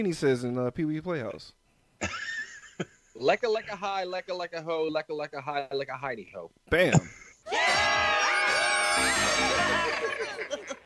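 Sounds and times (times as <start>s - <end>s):
speech: 0.0s - 2.2s, 2.8s - 7.7s
several people screaming and whooping: 7.5s - 10.5s
laughter: 9.6s - 10.8s.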